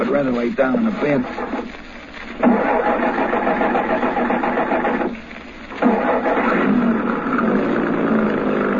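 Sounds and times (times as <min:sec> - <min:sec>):
speech: 0:00.1 - 0:01.6
truck engine starting and running: 0:02.4 - 0:05.1, 0:05.8 - 0:08.7.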